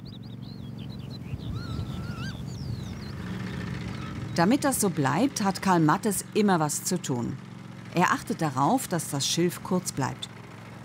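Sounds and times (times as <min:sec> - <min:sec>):
birds whistling and warbling at the Görmitz bird sanctuary: 0:00.0 - 0:04.8
birds honking and chattering at the Görmitz bird sanctuary: 0:00.0 - 0:05.7
speech: 0:04.4 - 0:10.8.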